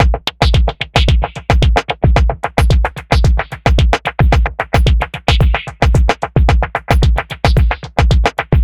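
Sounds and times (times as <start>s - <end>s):
abstract electro funk breakbeat music at 111 bpm: 0.0s - 8.6s.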